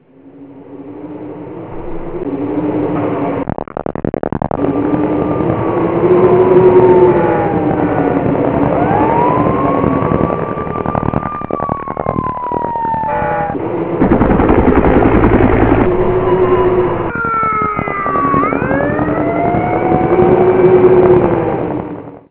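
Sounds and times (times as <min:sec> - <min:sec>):
sirens: 0:00.0 - 0:03.5, 0:04.5 - 0:22.2
wind: 0:00.0 - 0:22.2
gunshots: 0:13.9 - 0:18.4.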